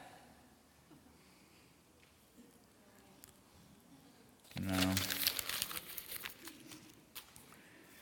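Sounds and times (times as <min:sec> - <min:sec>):
paper being crumpled: 0:04.5 - 0:08.0.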